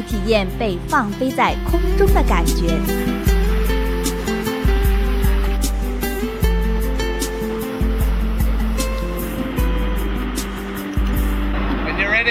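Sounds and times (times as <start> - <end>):
speech: 0.0 - 3.3
speedboat engine roaring at sea: 0.4 - 12.2
hiss of sea spray and wind: 3.1 - 11.6.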